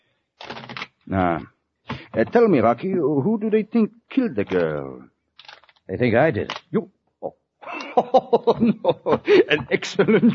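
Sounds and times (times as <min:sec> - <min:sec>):
playing cards being shuffled in a quick riffle: 0:00.4 - 0:01.0, 0:04.4 - 0:05.8, 0:06.5 - 0:06.7
speech: 0:01.1 - 0:05.1, 0:05.9 - 0:07.4, 0:08.0 - 0:10.3
laughter: 0:07.6 - 0:10.3.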